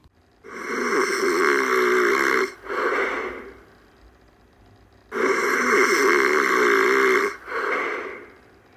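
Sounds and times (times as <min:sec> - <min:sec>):
voice imitating loud rasping snoring: 0:00.4 - 0:03.6, 0:05.1 - 0:08.4.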